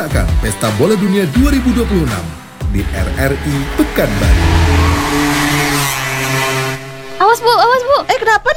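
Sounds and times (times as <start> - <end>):
speech: 0.0 - 4.9, 7.2 - 8.5
motorcycle engine roaring as it speeds along: 2.5 - 7.8.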